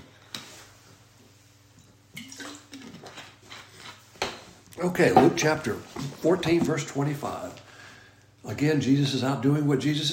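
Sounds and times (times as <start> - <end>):
person sipping water: 2.2 - 4.1
speech: 4.8 - 7.6, 8.5 - 10.1.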